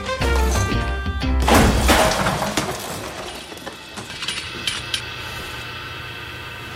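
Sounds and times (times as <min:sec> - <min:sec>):
hurled chair crashing with a sharp smash: 0:00.3 - 0:03.8
pieces clattering and rattling as they settle: 0:00.3 - 0:05.1.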